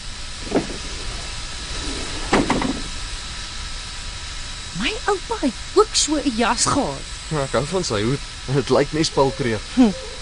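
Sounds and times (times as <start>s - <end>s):
constant hissing rumble: 0.0s - 10.1s
train door mechanical clunk: 0.4s - 2.9s
speech: 5.0s - 10.1s.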